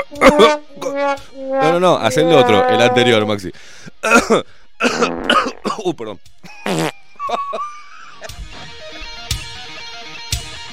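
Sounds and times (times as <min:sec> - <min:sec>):
speech: 0:00.1 - 0:08.4
buzzy fart noise with a wobbling pitch: 0:00.2 - 0:03.1, 0:04.9 - 0:05.6
laughter: 0:06.4 - 0:08.3.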